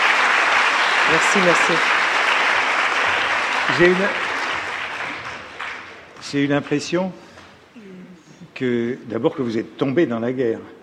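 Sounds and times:
audience applause: 0.0 - 6.2
speech: 1.1 - 2.0, 3.7 - 4.2, 6.2 - 7.2, 8.6 - 10.8.

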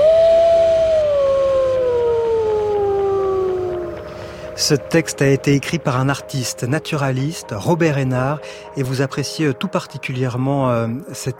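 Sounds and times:
wolves howling in chorus: 0.0 - 4.2
speech: 4.6 - 11.3.

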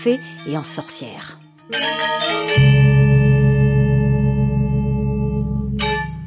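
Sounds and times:
speech: 0.0 - 3.0
resounding gamelan gong strike: 2.6 - 6.2.

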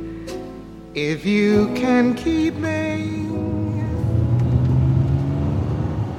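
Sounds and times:
speech: 0.9 - 3.5
car engine humming from inside the vehicle: 2.6 - 6.1.

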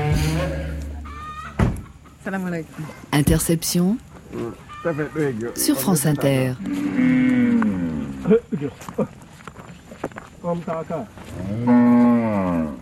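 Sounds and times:
cattle mooing: 0.0 - 1.3, 6.6 - 8.4, 11.3 - 12.8
speech: 2.3 - 9.2, 10.1 - 12.8.

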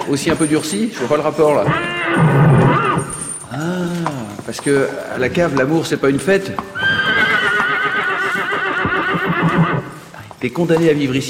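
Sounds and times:
speech: 0.0 - 6.9, 10.4 - 11.2
horse hooves shuffling: 0.0 - 11.2
horse neighing: 1.3 - 5.3, 6.6 - 10.2.

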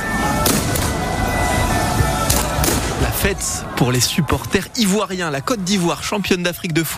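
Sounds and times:
outdoor crowd and street noise: 0.0 - 6.9
fireworks banging: 2.3 - 3.4
speech: 3.3 - 6.9.

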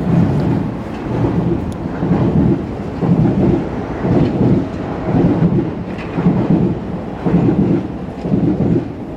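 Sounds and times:
commuter train passing on the rails in France: 0.0 - 9.1.

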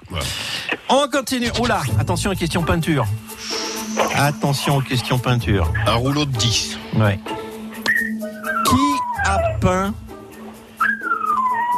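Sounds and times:
speech: 0.9 - 7.4
dog whining: 7.8 - 9.7, 10.4 - 11.7.

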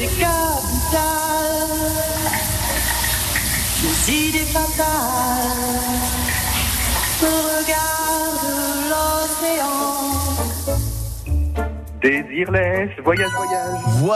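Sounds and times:
speech: 0.0 - 0.3, 4.1 - 6.2, 12.0 - 14.1
person singing a melody: 0.0 - 3.0, 3.7 - 10.8, 12.0 - 14.1
shower water running: 0.0 - 11.6.

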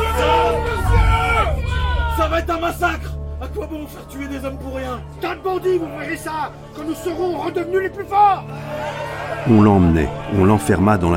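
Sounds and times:
large agitated crowd of men and women shouting and rushing toward a door: 0.0 - 2.5, 7.1 - 11.1
speech: 2.3 - 11.1.

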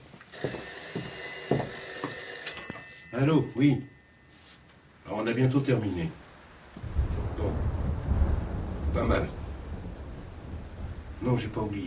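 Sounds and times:
telephone ringing: 0.3 - 4.8
hiss: 2.5 - 11.8
speech: 3.2 - 4.0, 5.1 - 6.2, 9.0 - 9.4, 11.2 - 11.8.

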